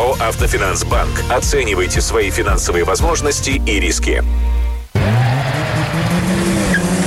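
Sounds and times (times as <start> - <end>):
speech: 0.2 - 5.0
race car engine roaring as it speeds past on a race track: 4.9 - 7.0
race car tires scraping: 4.9 - 7.0.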